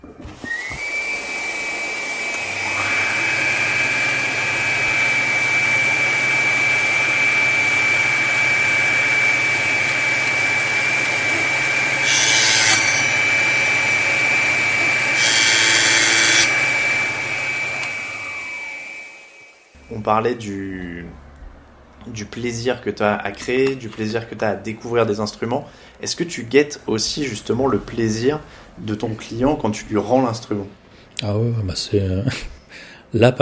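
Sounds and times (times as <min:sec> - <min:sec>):
connected vacuum droning hum: 0:00.0 - 0:20.1
power tool spinning up to a high whine: 0:00.3 - 0:19.8
machine grinding into a cow femur: 0:12.0 - 0:13.2, 0:15.1 - 0:16.6
speech: 0:20.1 - 0:21.2, 0:22.0 - 0:33.3.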